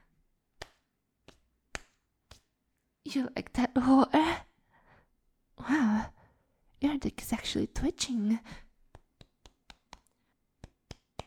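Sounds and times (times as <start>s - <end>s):
hand slapping skin: 0.5s - 2.6s, 8.8s - 11.2s
speech: 3.1s - 4.4s, 7.6s - 8.7s.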